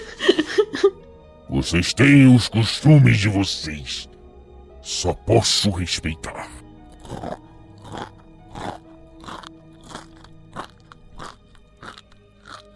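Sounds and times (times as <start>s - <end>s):
laughter: 0.0s - 1.0s
speech: 1.6s - 4.1s, 4.9s - 8.1s
crunchy chewing of food: 6.9s - 12.7s.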